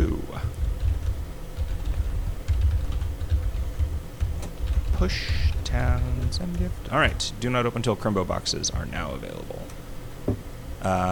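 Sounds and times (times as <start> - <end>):
typing on a computer keyboard: 0.5 - 6.9
speech: 5.0 - 11.1.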